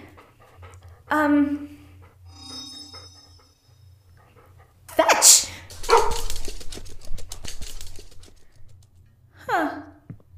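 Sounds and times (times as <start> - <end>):
speech: 1.1 - 1.7
large three-headed guard dog barking: 5.8 - 6.3.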